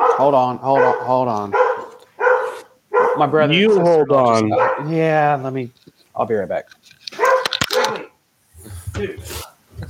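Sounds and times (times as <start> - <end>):
dog barking: 0.0 - 5.0, 7.1 - 8.1
speech: 0.2 - 1.7, 3.2 - 6.8.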